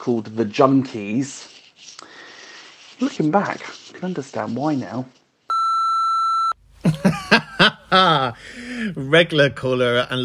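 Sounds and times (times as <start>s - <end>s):
speech: 0.0s - 1.6s, 3.0s - 5.2s, 7.9s - 10.2s
phone ringing with incoming call: 5.5s - 6.6s
laughter: 6.8s - 9.0s.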